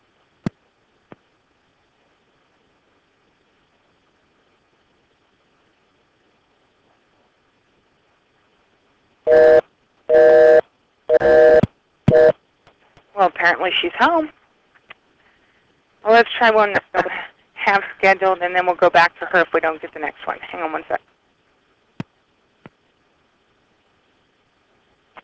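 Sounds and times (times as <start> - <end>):
telephone buzzing tone bursts on a call line: 9.3 - 12.4
speech: 13.6 - 14.4, 16.2 - 17.1, 17.7 - 21.0.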